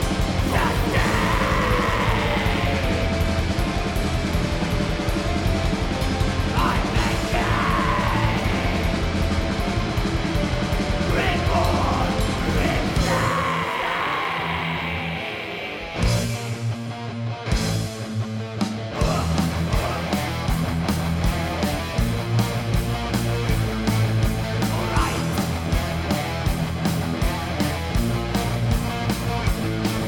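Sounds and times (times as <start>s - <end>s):
harsh yelled vocals: 0.0s - 3.7s, 6.3s - 10.0s, 10.8s - 16.7s, 18.9s - 20.8s, 24.4s - 26.1s
slow heavily distorted grindcore metal with thick guitars and pounding drums: 0.0s - 30.0s.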